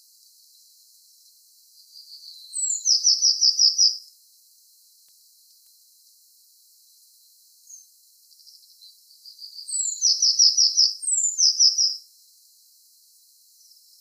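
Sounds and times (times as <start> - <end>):
Eurasian blue tit Cyanistes caeruleus calling: 2.0 - 4.0, 8.4 - 12.0.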